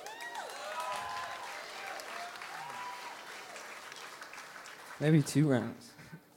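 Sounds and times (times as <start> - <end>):
audience whoops and cheers: 0.0 - 3.7
audience applause: 0.0 - 6.0
speech: 5.0 - 6.0.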